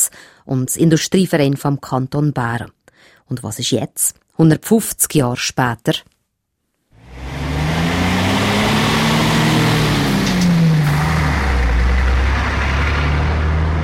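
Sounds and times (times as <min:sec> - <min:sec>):
speech: 0:00.4 - 0:06.1
heavy trucks rumbling past on a busy motorway: 0:07.0 - 0:13.8.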